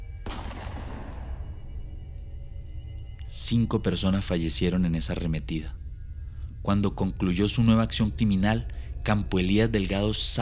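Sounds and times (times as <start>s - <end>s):
low rumble: 0.0s - 10.4s
gunshot sound effect: 0.2s - 1.7s
speech: 3.3s - 5.8s, 6.6s - 10.4s.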